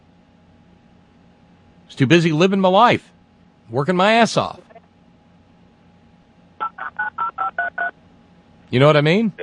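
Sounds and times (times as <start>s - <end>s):
speech: 1.9s - 4.7s, 8.7s - 9.4s
telephone keypad dialing tones: 6.7s - 7.9s.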